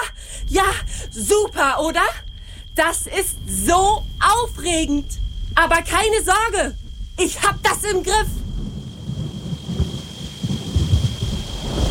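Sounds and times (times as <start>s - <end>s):
speech: 0.5s - 8.4s
deep rolling thunder from an approaching storm at a mountain pass: 6.7s - 11.8s
steady rain: 6.7s - 11.8s.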